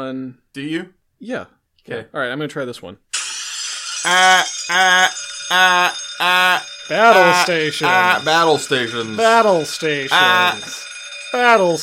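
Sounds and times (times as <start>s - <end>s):
speech: 0.0s - 3.1s, 4.0s - 11.8s
alarm bells ringing: 3.2s - 11.8s.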